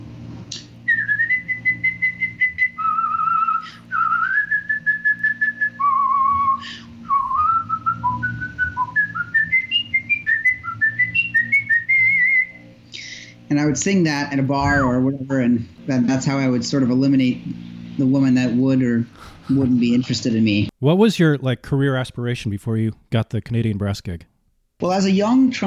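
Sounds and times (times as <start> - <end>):
person whistling a tune unaccompanied: 0.5 - 12.6
speech: 13.6 - 25.6.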